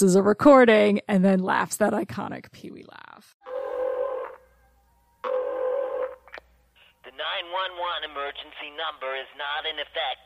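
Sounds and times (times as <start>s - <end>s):
speech: 0.0s - 3.4s, 7.4s - 10.2s
telephone tones as a woman calls 911: 5.2s - 6.4s.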